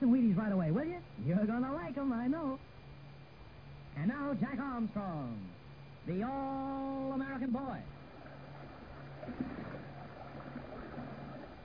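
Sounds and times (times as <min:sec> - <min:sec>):
speech: 0:00.4 - 0:02.7, 0:04.0 - 0:07.9, 0:09.2 - 0:09.7
churning wash of river rapids out of a gorge: 0:07.9 - 0:11.6
paddles of heavily loaded boat splashing against swift river rapids: 0:07.9 - 0:11.6
sharper paddle slap: 0:09.2 - 0:11.5.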